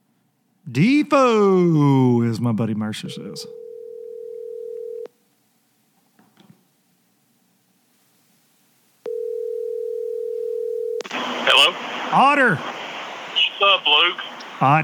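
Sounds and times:
speech: 0.7 - 3.6, 14.6 - 14.8
steady telephone dial tone: 3.5 - 5.1, 9.0 - 11.1
burst of static noise: 11.0 - 14.8.

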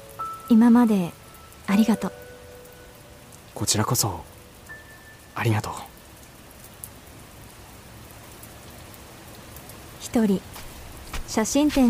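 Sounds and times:
rain falling at night on a street with a cherry tree: 0.0 - 11.8
speech: 0.5 - 2.2, 3.6 - 4.3, 5.4 - 5.9, 10.1 - 10.6, 11.3 - 11.8.

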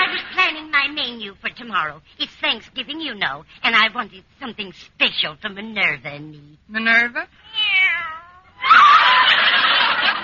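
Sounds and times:
speech: 1.7 - 7.8
kitten meowing while pawing at a stocking: 7.4 - 8.6
kitten giving a harsh raspy yowl: 7.5 - 9.1
laughter: 8.6 - 10.2.

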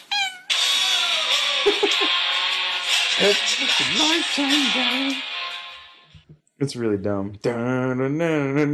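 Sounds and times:
cat meowing in a played video through tinny playback: 0.1 - 1.3
laughter: 1.3 - 2.3
speech: 1.7 - 2.3, 3.2 - 5.3, 6.6 - 8.7.

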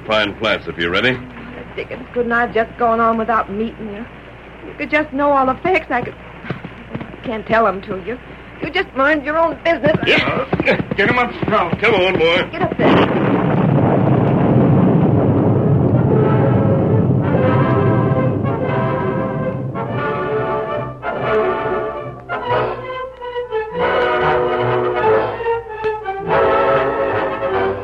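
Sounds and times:
rolling thunder: 0.0 - 22.2
speech: 0.1 - 6.6, 7.2 - 13.2
sustained pulsing tonal sounds: 15.4 - 27.8.

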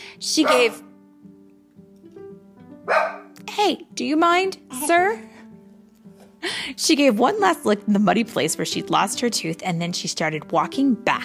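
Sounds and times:
speech: 0.2 - 0.9, 2.9 - 5.3, 6.4 - 11.2
puppy barking and yipping: 0.4 - 0.8, 2.9 - 3.4.

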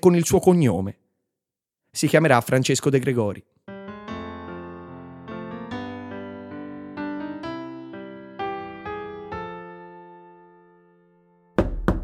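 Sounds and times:
speech: 0.0 - 1.0, 1.9 - 3.5
gentle piano-like notes: 3.7 - 12.0
knocking on a door: 11.6 - 12.0.

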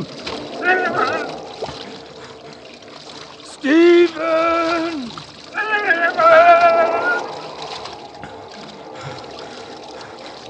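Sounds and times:
swiftly flowing water rushing: 0.0 - 10.4
person crying out: 4.0 - 7.4.

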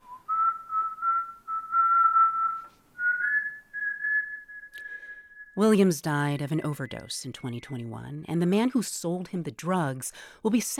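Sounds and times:
person whistling a slow tune: 0.0 - 5.6
speech: 5.6 - 10.7.

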